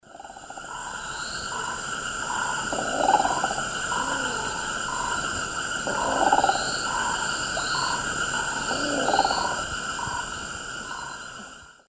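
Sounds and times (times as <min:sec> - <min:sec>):
Mesembrinibis cayennensis calling in South American eastern lowlands: 0:00.4 - 0:11.6.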